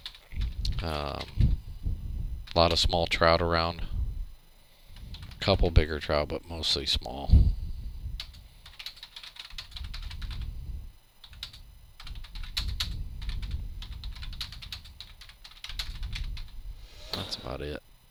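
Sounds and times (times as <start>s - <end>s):
fast typing on a computer keyboard: 0.0s - 1.5s, 8.2s - 10.5s, 11.2s - 16.5s
speech: 0.8s - 1.4s, 2.6s - 3.9s, 5.4s - 7.6s.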